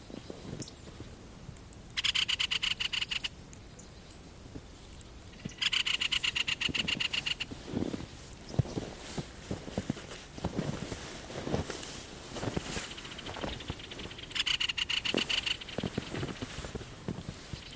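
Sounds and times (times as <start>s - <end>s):
great spotted woodpecker harsh scolding rattling chatter: 2.0s - 3.4s, 5.3s - 7.5s, 12.9s - 16.5s
rustling: 4.6s - 17.7s.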